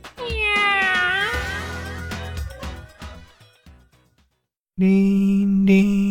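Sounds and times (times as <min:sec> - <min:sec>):
loud drawn-out cat meow with falling pitch: 0:00.0 - 0:01.6
bright jingle-like music with sharp hits: 0:01.4 - 0:04.2
speech: 0:04.8 - 0:06.0.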